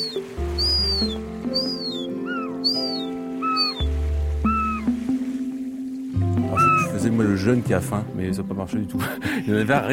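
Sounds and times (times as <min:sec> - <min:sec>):
young herring gulls calling overhead: 0:00.0 - 0:07.7
speech: 0:07.2 - 0:09.9.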